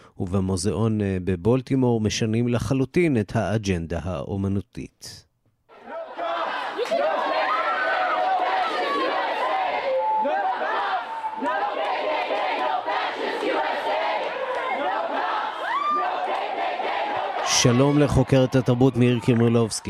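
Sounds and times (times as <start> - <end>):
speech: 0.2 - 5.3, 17.6 - 19.8
large crowd shouting and chanting as a statue is taken down: 5.7 - 19.8.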